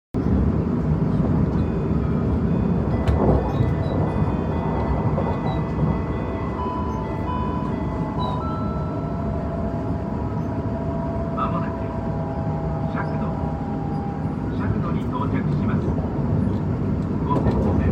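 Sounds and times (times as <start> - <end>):
Kintetsu Osaka Line train east of Shakudo: 0.2 - 17.9.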